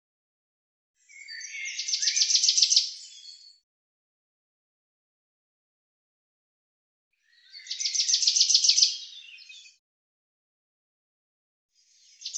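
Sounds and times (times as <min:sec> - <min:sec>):
common chaffinch singing: 0:01.1 - 0:03.6, 0:07.4 - 0:09.8, 0:12.0 - 0:12.3.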